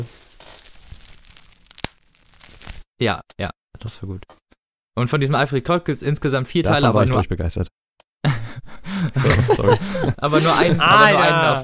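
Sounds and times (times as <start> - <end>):
plastic foil crackling: 0.0 - 2.9
speech: 3.0 - 4.4, 5.0 - 7.8, 9.2 - 11.6
laughter: 8.3 - 11.6.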